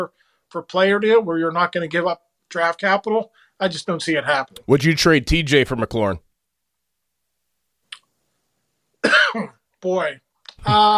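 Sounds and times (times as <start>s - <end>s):
speech: 0.0s - 6.2s, 9.3s - 10.9s
single short cough: 9.0s - 9.6s.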